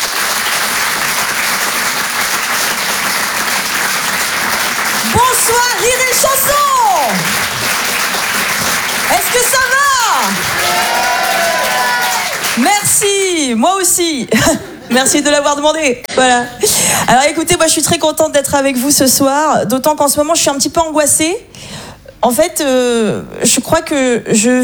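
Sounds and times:
comedy club audience applauding a comedian: 0.0s - 13.4s
loud voices calling out above the clapping: 9.1s - 13.3s
speech: 12.6s - 24.6s.

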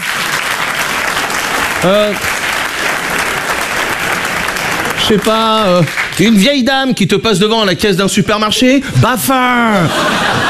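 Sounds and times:
audience clapping steadily and densely: 0.0s - 6.7s
speech: 1.8s - 2.4s, 5.1s - 10.3s
laughter: 8.6s - 10.4s.

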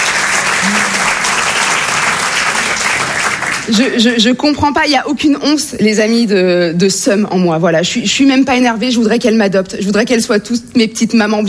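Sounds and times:
audience clapping: 0.0s - 4.2s
speech: 3.7s - 11.4s.

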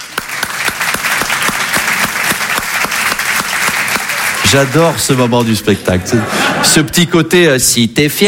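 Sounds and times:
sharp individual claps: 0.0s - 4.8s
audience applause: 0.0s - 6.1s
speech: 4.5s - 8.2s
laughter: 5.7s - 7.2s.

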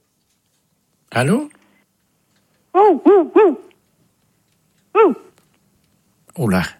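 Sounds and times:
speech: 1.1s - 1.5s, 6.4s - 6.7s
dog barking over a telephone line: 2.8s - 3.7s.

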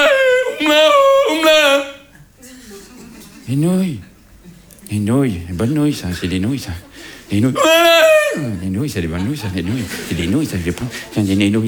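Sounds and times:
Tyrolean yodel singing: 0.0s - 2.1s, 7.5s - 8.6s
laughter: 0.0s - 11.6s
speech: 3.5s - 4.1s, 4.9s - 11.6s.

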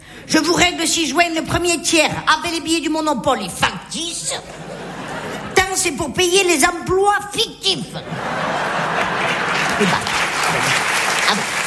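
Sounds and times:
speech: 0.3s - 4.7s, 5.8s - 8.6s, 9.8s - 10.8s
laughter: 4.4s - 5.8s, 8.0s - 11.6s
one person clapping hands: 9.0s - 11.6s.

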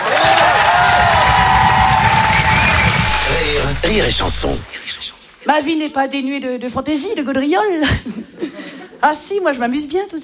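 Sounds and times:
loud dense audience applause: 0.0s - 4.6s
speech: 3.9s - 10.2s.

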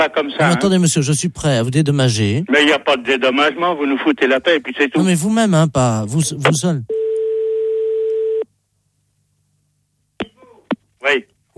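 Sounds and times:
speech: 0.0s - 7.0s, 11.0s - 11.5s
telephone busy tone after a call is cut off: 6.9s - 8.4s.

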